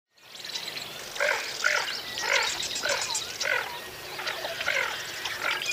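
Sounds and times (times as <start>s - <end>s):
Lesser Scaup Aythya affinis calling: 1.2s - 5.6s.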